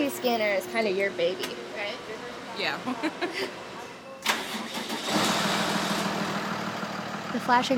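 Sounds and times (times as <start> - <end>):
speech: 0.1 - 3.7, 7.3 - 7.7
laughter: 2.8 - 3.7
truck engine of a mobile CT scanner unit starting and idling: 4.2 - 7.7.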